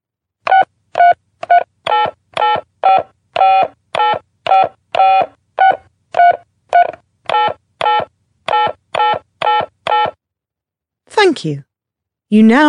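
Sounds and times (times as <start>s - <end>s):
electronic phone keypad beeps entering a debit card number: 0.5s - 10.2s
speech: 11.4s - 11.7s, 12.3s - 12.6s.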